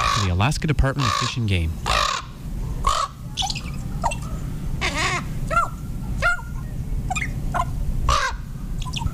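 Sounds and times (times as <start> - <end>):
common raven croaking: 0.0 - 5.6, 7.2 - 8.5
low rumbling outdoor background: 0.0 - 9.1
speech: 0.4 - 1.9.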